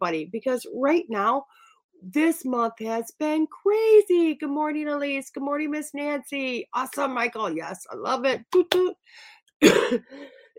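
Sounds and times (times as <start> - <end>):
speech: 0.0 - 10.4
cough: 9.6 - 10.2.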